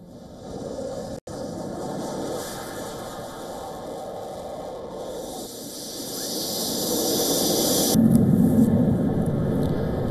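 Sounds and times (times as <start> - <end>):
F-16 fighter jet engine roar: 0.0 - 10.0.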